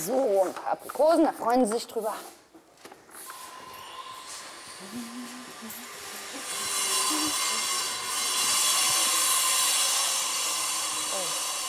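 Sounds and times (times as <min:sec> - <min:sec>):
speech: 0:00.0 - 0:02.4, 0:04.8 - 0:05.8
construction machinery roar at a zoo elephant house: 0:03.4 - 0:11.6.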